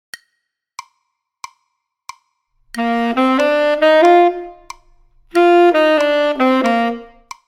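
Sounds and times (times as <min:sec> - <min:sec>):
tenor saxophone: 0:02.8 - 0:07.4.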